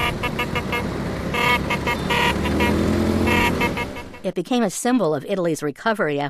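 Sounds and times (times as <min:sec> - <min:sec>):
Vespa scooter engines buzzing in Rome: 0:00.0 - 0:04.3
speech: 0:04.3 - 0:06.2.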